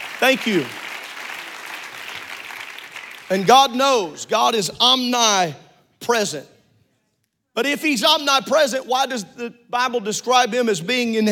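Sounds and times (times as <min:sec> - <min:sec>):
large group applauding: 0:00.0 - 0:03.8
speech: 0:00.2 - 0:00.8, 0:03.3 - 0:06.5, 0:07.6 - 0:11.3.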